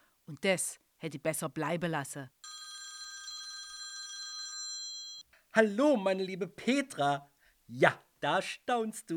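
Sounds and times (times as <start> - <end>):
speech: 0.3 - 2.7, 5.6 - 9.1
telephone ringing with bright electronic trill: 2.4 - 5.3.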